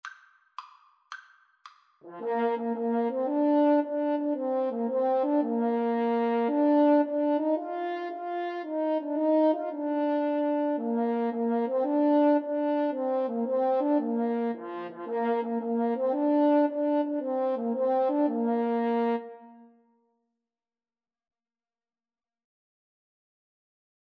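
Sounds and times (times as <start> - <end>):
French horn duet: 2.0 - 19.6.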